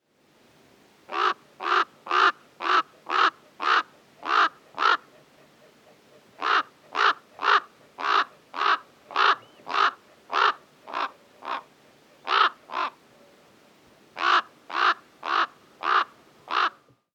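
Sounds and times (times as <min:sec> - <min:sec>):
Northern raven Corvus corax calling: 0:01.1 - 0:05.2, 0:05.8 - 0:13.0, 0:14.2 - 0:16.8.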